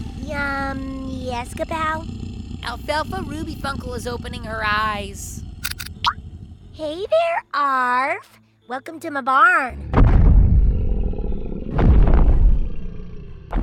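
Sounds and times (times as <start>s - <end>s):
creature growling and roaring: 0.0s - 3.9s, 9.8s - 13.5s
speech: 0.3s - 5.4s, 6.8s - 10.1s.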